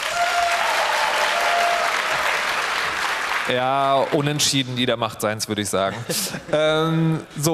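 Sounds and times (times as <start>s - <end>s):
audience applause: 0.0s - 4.5s
speech: 3.5s - 7.5s.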